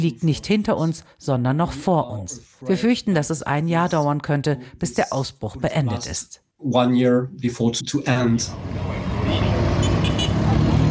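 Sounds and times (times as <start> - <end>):
speech: 0.0 - 9.7
street traffic in Bunia: 8.2 - 10.8
engines rumbling: 8.4 - 10.8
car horns: 9.0 - 10.7.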